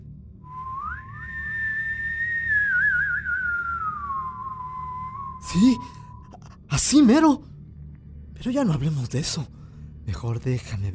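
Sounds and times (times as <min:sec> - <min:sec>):
person whistling a tune: 0:00.5 - 0:06.2
speech: 0:05.5 - 0:06.0, 0:06.7 - 0:07.5, 0:08.4 - 0:10.9.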